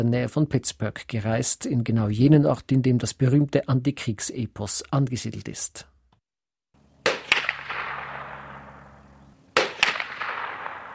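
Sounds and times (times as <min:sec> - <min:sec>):
speech: 0:00.0 - 0:05.9
low steady hum: 0:06.8 - 0:09.6
hunting rifle shots echoing through fog-covered hills: 0:07.0 - 0:10.9.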